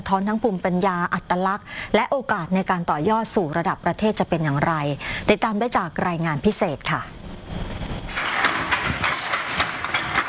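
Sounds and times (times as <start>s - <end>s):
speech: 0.1s - 7.2s
hand loom beating threads into cloth while weaving patterned fabric: 8.1s - 10.2s.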